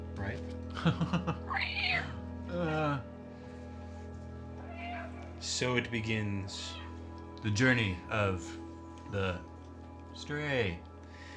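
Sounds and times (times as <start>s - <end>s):
speech: 0.2s - 3.1s, 5.4s - 6.8s, 7.4s - 9.5s, 10.2s - 10.9s
laughter: 0.7s - 1.5s
cats screeching wildly: 1.5s - 2.2s, 4.6s - 5.4s.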